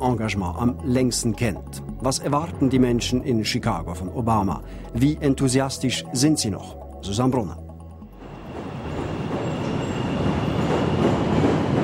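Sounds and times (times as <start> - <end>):
speech: 0.0 - 7.6
elevated subway train rumbling through a station in central Chicago: 8.1 - 11.8.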